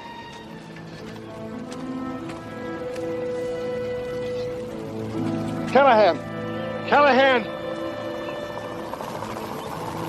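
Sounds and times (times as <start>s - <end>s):
helicopter rotor wash and engine whine: 3.9s - 10.0s
speech: 5.7s - 6.3s, 6.9s - 7.6s.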